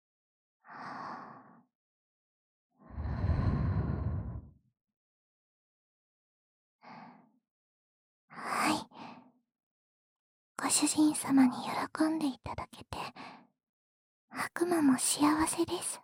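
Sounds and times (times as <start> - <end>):
soft breathy exhalations close to the microphone: 2.9 - 4.5
speech: 10.6 - 13.2, 14.3 - 16.0.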